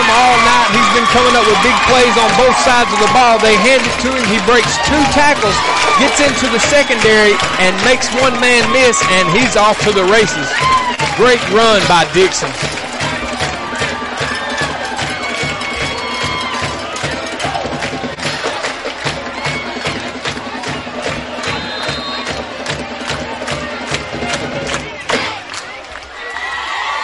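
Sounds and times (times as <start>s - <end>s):
crowd shouts and whoops: 0.0s - 11.3s, 13.7s - 16.8s, 26.1s - 27.0s
home crowd at a football game roaring and cheering after a touchdown run: 0.0s - 27.0s
speech: 1.2s - 12.8s.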